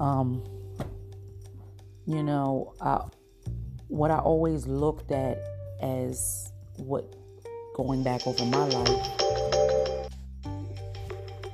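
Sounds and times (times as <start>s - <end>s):
speech: 0.0s - 0.6s, 2.1s - 3.2s, 3.9s - 7.2s, 7.8s - 10.0s
phone ringtone during a call: 8.2s - 10.1s.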